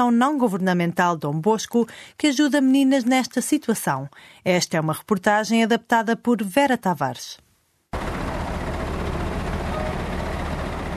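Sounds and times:
speech: 0.0s - 7.4s
bus engine rumble driving through city streets: 8.0s - 10.9s
road noise: 8.0s - 10.9s.

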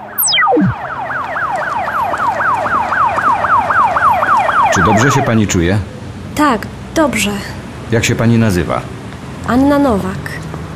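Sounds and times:
downward swoosh: 0.0s - 0.8s
ambulance sirens wailing as ambulances arrive: 0.0s - 5.8s
speech: 4.8s - 10.4s.

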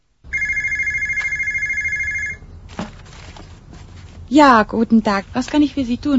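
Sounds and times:
telephone ringing with electronic trill: 0.3s - 2.5s
speech: 4.3s - 6.1s.

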